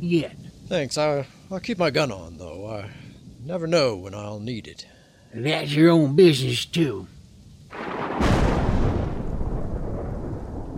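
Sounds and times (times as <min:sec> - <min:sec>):
speech: 0:00.0 - 0:07.2
steady heavy rain: 0:00.0 - 0:10.7
loud thunderclap rolling into a long rumble: 0:07.7 - 0:10.7.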